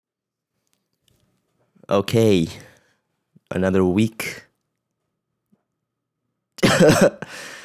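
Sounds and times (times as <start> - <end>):
speech: 1.9 - 2.7, 3.5 - 4.4, 6.8 - 7.4
person coughing after an illness: 6.6 - 7.6.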